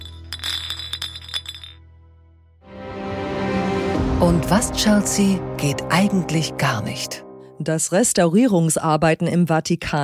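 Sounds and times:
glasses clinking together in a toast: 0.0s - 1.8s
speech: 4.2s - 10.0s.

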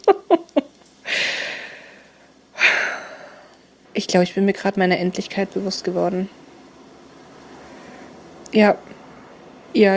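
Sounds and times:
breathy huffs: 1.0s - 3.6s
speech: 4.0s - 6.4s, 8.5s - 9.0s, 9.7s - 9.9s.

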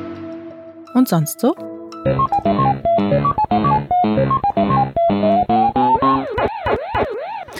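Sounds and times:
speech: 1.0s - 4.5s
arcade video game electronic jingle of stepped beeping notes: 2.0s - 7.5s
Pac-Man arcade video game looping wavering tone rising and falling: 5.2s - 7.5s.

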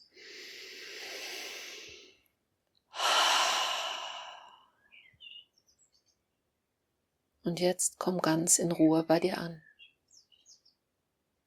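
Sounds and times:
slow breathing in and out during a guided relaxation exercise: 0.0s - 4.9s
speech: 7.5s - 9.7s.

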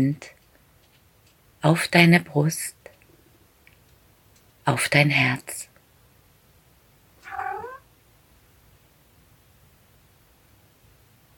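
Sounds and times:
speech: 0.0s - 0.4s, 1.6s - 2.8s, 4.7s - 5.7s
domestic cat meowing: 7.2s - 7.8s.

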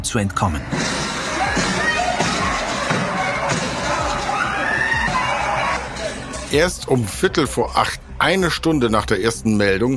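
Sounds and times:
speech: 0.0s - 1.0s, 6.5s - 9.9s
dense crowd of restaurant guests screaming and shouting while fleeing: 0.7s - 6.5s.

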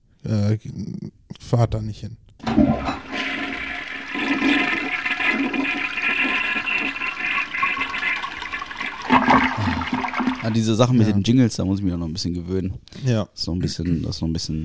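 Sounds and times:
speech: 0.2s - 2.9s, 10.4s - 14.6s
toilet flushing: 2.4s - 10.7s.

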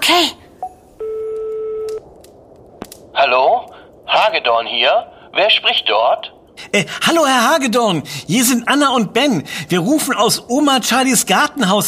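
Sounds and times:
telephone touch tones dialing on speakerphone: 0.6s - 2.0s
speech: 4.3s - 11.8s.

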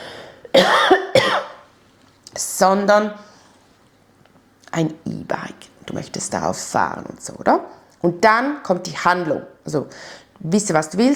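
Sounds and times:
person coughing mid-conversation: 0.5s - 1.6s
speech: 2.6s - 3.3s, 4.8s - 11.1s.

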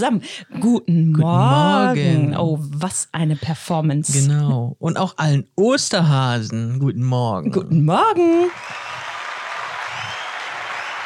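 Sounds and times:
speech: 0.0s - 8.8s
steady dense applause from a crowd: 8.5s - 11.0s.

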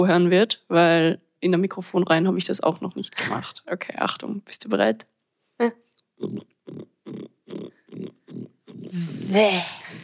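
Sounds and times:
speech: 0.0s - 10.0s
person imitating a wild boar with rough throaty grunts: 6.2s - 10.0s.

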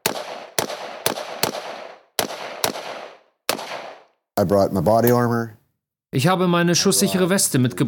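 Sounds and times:
gunshots during militia training exercise: 0.0s - 4.2s
speech: 4.4s - 7.8s.

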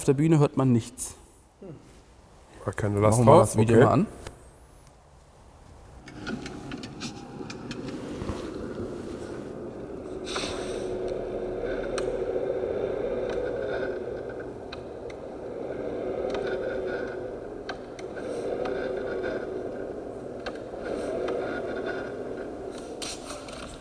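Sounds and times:
speech: 0.0s - 1.9s, 2.6s - 4.3s
car droning hum under load: 1.3s - 23.7s
car rasping scraping rub when steering left and accelerating: 6.2s - 23.7s.

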